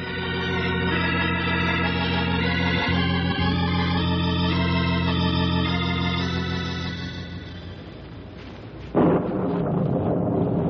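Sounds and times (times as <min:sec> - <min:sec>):
sustained tonal drone: 0:00.0 - 0:08.0
deep continuous rolling thunder: 0:08.9 - 0:10.6.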